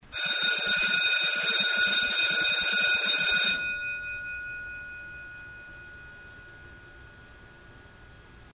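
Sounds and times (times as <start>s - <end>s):
festive school bell ringing: 0.0s - 8.2s.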